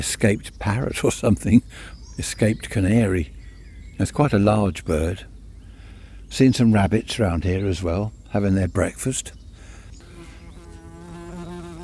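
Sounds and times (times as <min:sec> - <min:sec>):
speech: 0:00.0 - 0:03.4, 0:04.0 - 0:05.3, 0:06.3 - 0:09.4
wasp buzzing near the microphone: 0:10.0 - 0:11.8.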